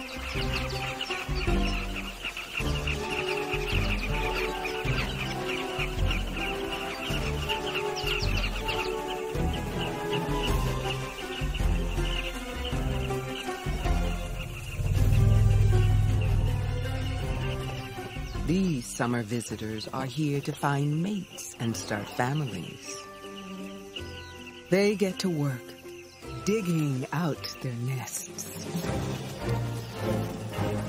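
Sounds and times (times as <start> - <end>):
flock of carmine bee-eaters calling over newly dried ground: 0.0 - 30.8
low rumble: 14.2 - 18.5
speech: 19.0 - 22.9, 24.7 - 25.7, 26.4 - 30.2.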